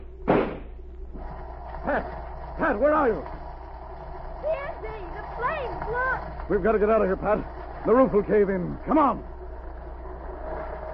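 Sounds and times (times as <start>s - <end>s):
faint steady hum: 0.0s - 10.9s
gunshot blasting open a door lock: 0.2s - 0.8s
speech: 1.9s - 3.4s, 4.5s - 9.3s.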